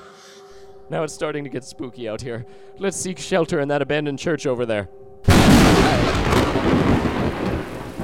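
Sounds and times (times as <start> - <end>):
speech: 0.9 - 5.0
long heavy rumble of thunder with a crackling edge: 5.3 - 8.0
steady rain: 5.4 - 8.0.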